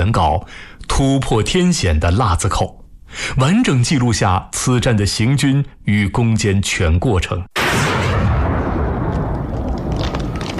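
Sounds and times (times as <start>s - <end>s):
speech: 0.0s - 7.6s
dense gunfire: 7.6s - 10.5s
explosive bursts: 7.6s - 10.5s.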